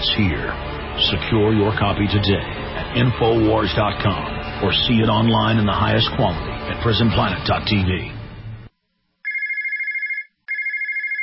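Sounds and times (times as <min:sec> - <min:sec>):
speech: 0:00.2 - 0:08.2
telephone ringing with electronic trilling: 0:09.2 - 0:11.2.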